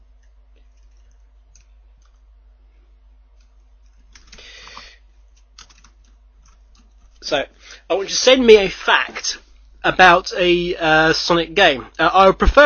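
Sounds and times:
steady low hum: 0:00.0 - 0:12.6
computer keyboard typing: 0:00.1 - 0:02.3, 0:03.4 - 0:07.3
speech: 0:07.3 - 0:12.6.

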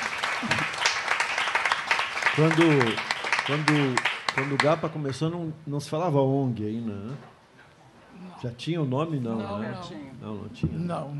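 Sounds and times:
audience applause at a soirée: 0:00.0 - 0:05.0
speech: 0:02.4 - 0:07.3, 0:08.2 - 0:11.1.

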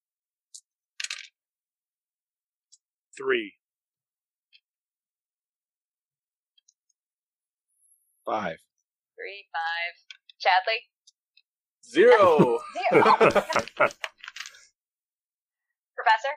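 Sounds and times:
dice clattering when rolled: 0:01.0 - 0:01.4, 0:13.5 - 0:14.6
speech: 0:03.2 - 0:03.6, 0:08.3 - 0:08.6, 0:09.2 - 0:10.9, 0:11.9 - 0:14.1, 0:16.0 - 0:16.3
laughter: 0:12.0 - 0:14.1.

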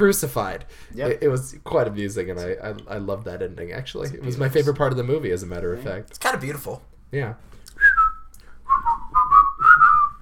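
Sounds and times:
speech: 0:00.0 - 0:07.9
person whistling a short wavering tune: 0:07.8 - 0:10.2.

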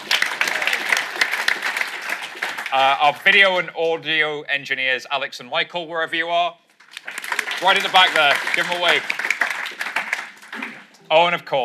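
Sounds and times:
event audience applauding for the volunteers: 0:00.0 - 0:03.5, 0:06.8 - 0:11.1
speech: 0:02.7 - 0:06.6, 0:07.6 - 0:09.2, 0:11.1 - 0:11.6.

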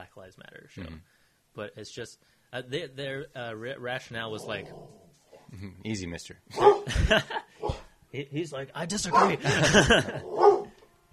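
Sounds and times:
speech: 0:00.1 - 0:10.4
dog barking: 0:04.4 - 0:04.9, 0:06.6 - 0:07.0, 0:07.6 - 0:07.9, 0:09.1 - 0:10.8
laughter: 0:06.6 - 0:07.5, 0:09.0 - 0:10.4.

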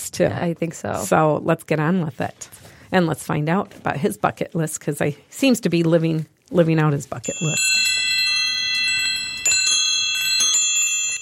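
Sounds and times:
speech: 0:00.1 - 0:08.0
bright metallic transition chimes: 0:07.3 - 0:11.2.

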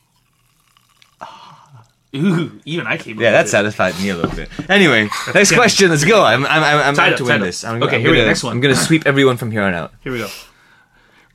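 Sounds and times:
carbonated drink being sipped at the microphone: 0:00.0 - 0:02.6
speech: 0:02.1 - 0:10.5.

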